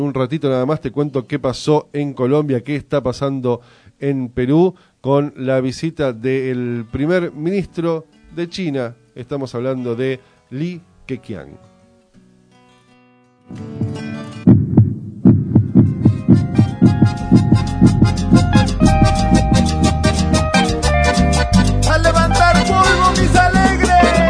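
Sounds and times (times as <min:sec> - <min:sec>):
speech: 0:00.0 - 0:11.7, 0:13.5 - 0:13.8
music: 0:06.0 - 0:24.2
heartbeat sound effect of low thumps: 0:13.5 - 0:20.1.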